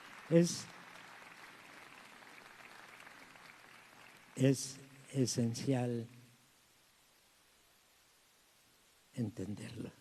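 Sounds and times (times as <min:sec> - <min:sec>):
audience applause: 0:00.0 - 0:04.4
speech: 0:00.3 - 0:00.8, 0:04.4 - 0:06.2, 0:09.2 - 0:09.9.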